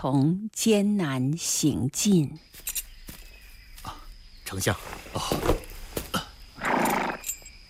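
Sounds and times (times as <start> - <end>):
speech: 0.0 - 2.9, 3.8 - 5.7
tired horse neighing: 6.6 - 7.3.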